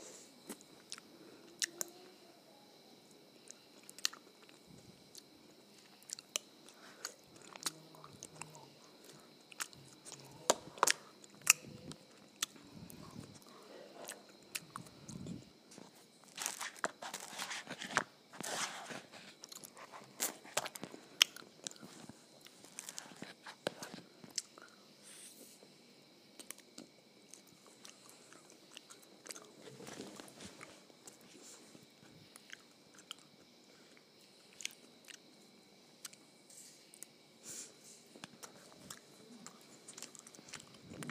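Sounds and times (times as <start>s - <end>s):
soft chewing of ice cream and waffles: 0.4s - 2.2s, 3.0s - 25.7s, 26.3s - 41.0s
crunchy bites of waffles and ice cream: 3.5s - 24.7s, 26.4s - 31.4s, 32.2s - 35.3s, 38.2s - 41.0s.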